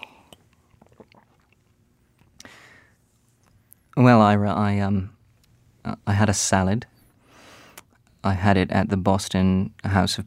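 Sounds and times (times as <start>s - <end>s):
person gulping water: 0.0s - 2.5s
person sipping water: 0.0s - 2.6s
speech: 4.0s - 5.2s, 5.8s - 6.9s, 8.2s - 10.2s.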